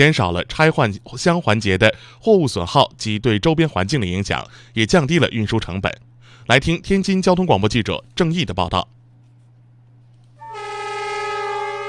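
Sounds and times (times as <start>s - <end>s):
speech: 0.0s - 9.0s
horn of a freight train carrying containers departing a container station: 10.4s - 11.8s.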